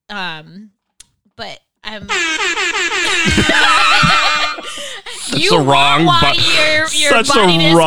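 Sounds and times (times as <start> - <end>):
speech: 0.1 - 0.8, 1.4 - 7.8
air horn sound effect blaring: 2.1 - 5.0
laughter: 2.1 - 7.8.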